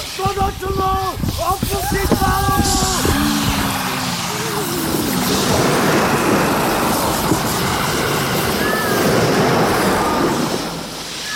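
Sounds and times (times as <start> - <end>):
rushing water and surf flooding a sinking ship: 0.0 - 11.3
voices shouting: 1.6 - 11.3.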